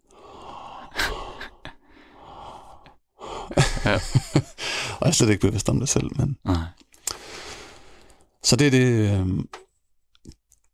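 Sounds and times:
voice imitating heavy breathing of someone playing guitar: 0.0 - 3.6
speech: 3.5 - 4.4, 5.0 - 6.8, 8.5 - 9.6
laughter: 3.6 - 4.6.

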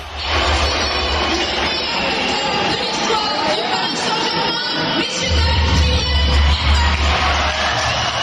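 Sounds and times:
large football stadium crowd whistling in disapproval at a player: 0.0 - 8.2.

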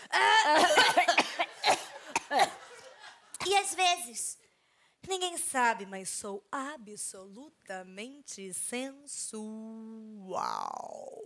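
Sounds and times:
person acting out sobbing wail: 0.0 - 1.2
person coughing sharply: 0.0 - 2.7
speech: 0.2 - 0.8, 3.6 - 4.4, 5.1 - 11.2.

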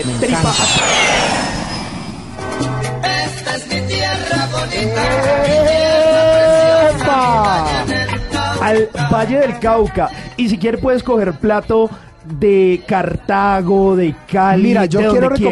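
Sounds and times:
speech: 0.0 - 1.6, 8.6 - 15.5
airplane sound effect with jet-like whoosh and falling whine: 0.0 - 3.6
loud layered music with sustained tones: 2.4 - 12.8.

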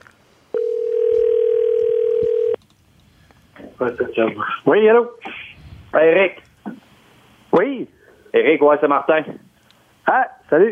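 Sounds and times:
telephone ringing tone on an outgoing call: 0.5 - 2.6
speech: 3.8 - 5.3, 6.0 - 6.5, 7.6 - 9.4, 10.1 - 10.6.

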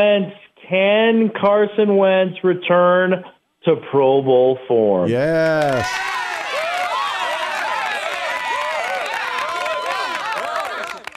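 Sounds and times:
speech: 0.0 - 6.0
crowd applause: 5.1 - 11.1
excited cheers and whoops: 5.4 - 11.1.

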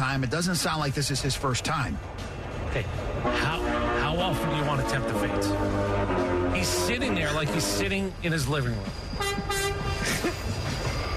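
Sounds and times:
train rumbling: 0.0 - 11.1
speech: 0.2 - 9.6
train horn blast: 3.2 - 7.9, 9.2 - 10.0.

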